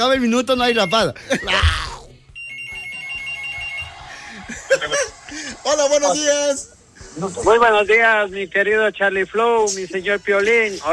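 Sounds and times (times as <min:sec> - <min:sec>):
speech: 0:00.0 - 0:01.8, 0:05.7 - 0:10.9
laughter: 0:01.2 - 0:01.8, 0:03.9 - 0:05.6
telephone ringing with a pulsing high electronic ring: 0:02.4 - 0:04.1.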